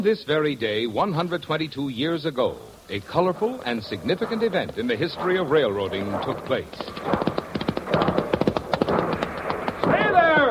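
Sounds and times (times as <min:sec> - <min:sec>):
speech: 0:00.0 - 0:07.4
horse hooves clip-clopping while pulling a car in a race: 0:03.1 - 0:10.4.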